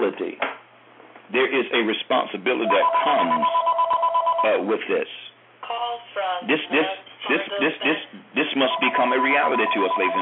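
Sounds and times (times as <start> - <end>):
speech: 1.3 - 3.8, 4.4 - 5.2, 6.4 - 10.2
phone ringtone from a small speaker: 2.6 - 4.6, 8.6 - 10.2.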